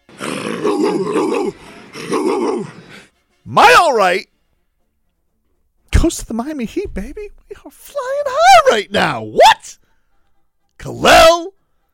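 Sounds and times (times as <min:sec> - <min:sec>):
man imitating a barking dog with growling barks on a TV broadcast: 0:00.2 - 0:03.0
speech: 0:03.5 - 0:04.3, 0:06.0 - 0:09.8, 0:10.8 - 0:11.6.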